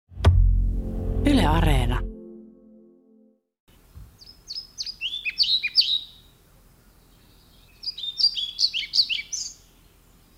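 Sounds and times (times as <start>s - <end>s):
brief low tone: 0.2s - 3.4s
speech: 1.5s - 2.1s
European pied flycatcher singing in spring: 3.7s - 10.3s.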